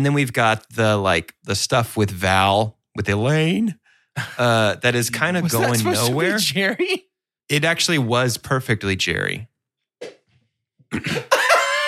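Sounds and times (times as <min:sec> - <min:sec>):
speech: 0:00.0 - 0:10.2, 0:10.9 - 0:11.4
laughter: 0:05.6 - 0:06.3, 0:11.0 - 0:11.8
stifled coughing: 0:10.9 - 0:11.8.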